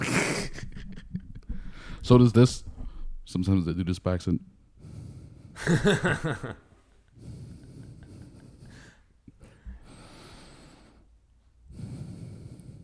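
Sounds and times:
heavy breathing into a microphone: 1.5 - 3.2, 4.8 - 5.8, 7.1 - 12.8
speech: 2.0 - 2.7, 3.3 - 4.6, 5.6 - 6.6
laughter: 5.6 - 6.6.

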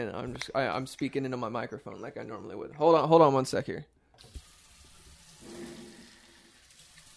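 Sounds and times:
speech: 0.0 - 4.4
bathroom faucet running: 4.2 - 7.1.

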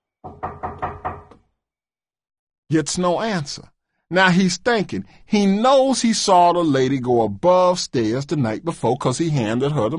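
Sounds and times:
tavern keeper knocking on a wooden upstairs door in a tavern: 0.2 - 1.5
speech: 2.7 - 9.9.

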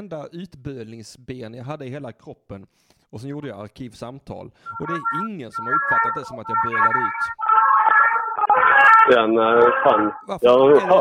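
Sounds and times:
speech: 0.0 - 7.7, 9.0 - 11.0
wailing ambulance siren passing by: 4.7 - 10.2.

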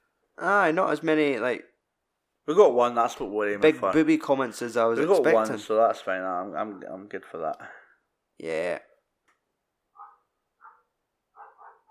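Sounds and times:
speech: 0.4 - 1.7, 2.4 - 7.8, 8.4 - 8.9
adult dog barking outside: 9.9 - 11.8.

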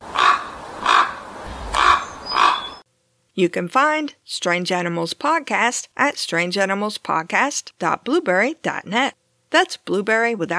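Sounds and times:
raven croaking: 0.1 - 2.8
speech: 3.4 - 10.5.

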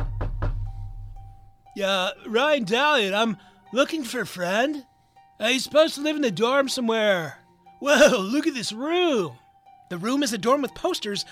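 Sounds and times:
knocking on a dorm room door: 0.0 - 1.2
speech: 1.8 - 11.3.

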